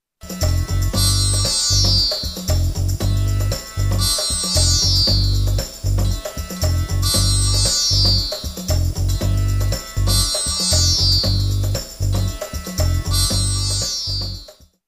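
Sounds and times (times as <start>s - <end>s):
high tambura drone: 0.2s - 14.5s.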